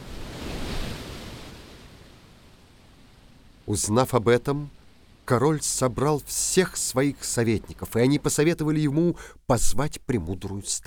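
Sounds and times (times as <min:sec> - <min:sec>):
sea waves crashing on shore: 0:00.0 - 0:05.4
speech: 0:03.7 - 0:10.8.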